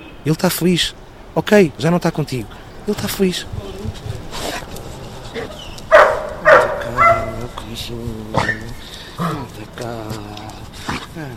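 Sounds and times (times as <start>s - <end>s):
low voices murmuring: 0.0s - 11.3s
speech: 0.2s - 4.4s, 7.7s - 11.3s
fat dog yipping and barking: 5.4s - 7.5s, 8.4s - 9.4s.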